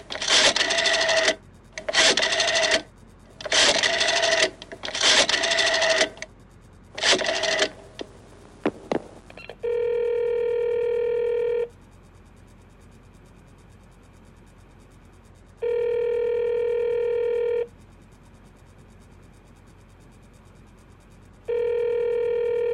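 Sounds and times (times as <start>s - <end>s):
telephone ringing tones: 0.0s - 6.2s, 7.0s - 8.0s, 9.4s - 11.7s, 15.6s - 17.7s, 21.5s - 22.7s
telephone dialing clicks from a call placed to a Murray Hill exchange number: 0.0s - 6.3s, 7.0s - 8.1s.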